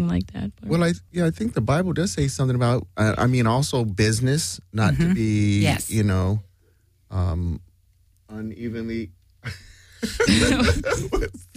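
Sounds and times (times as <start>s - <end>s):
speech: 0.0s - 6.5s, 7.1s - 7.7s, 8.3s - 11.5s
laughter: 9.4s - 11.5s
woman coughing: 10.2s - 11.5s.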